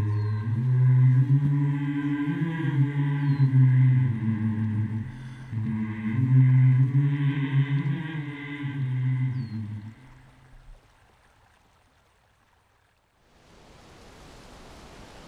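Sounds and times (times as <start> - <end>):
group of elders humming a slow somber hymn: 0.0 - 10.5.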